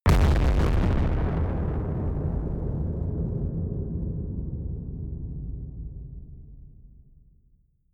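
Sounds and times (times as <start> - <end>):
distorted explosions: 0.1 - 5.8.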